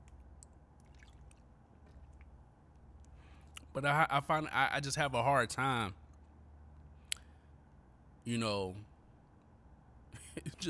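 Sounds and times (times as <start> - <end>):
person sipping water: 0.0 - 3.7
swallowing: 0.0 - 3.7
speech: 3.8 - 6.0, 8.2 - 8.9, 10.4 - 10.6.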